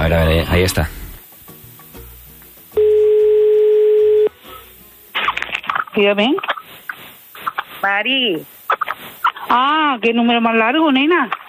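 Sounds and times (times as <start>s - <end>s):
faint noise on a telephone line: 0.0s - 11.4s
speech: 0.1s - 1.0s, 6.0s - 6.5s, 7.8s - 8.6s, 9.5s - 11.4s
telephone tone: 2.8s - 4.4s.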